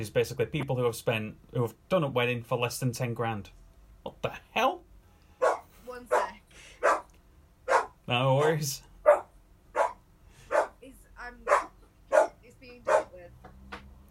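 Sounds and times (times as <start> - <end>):
speech: 0.0 - 4.7, 8.1 - 8.9
drawn-out dog bark: 5.4 - 10.8, 11.5 - 13.2.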